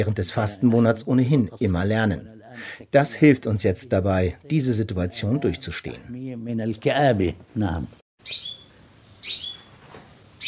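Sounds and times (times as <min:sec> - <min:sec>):
speech: 0:00.0 - 0:08.6
budgerigar chirping excitedly: 0:08.2 - 0:09.7.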